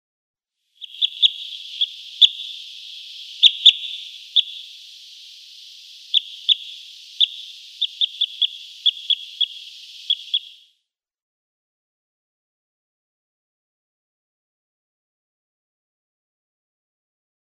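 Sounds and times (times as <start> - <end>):
Parrot Crossbill calls: 0.8 - 10.6.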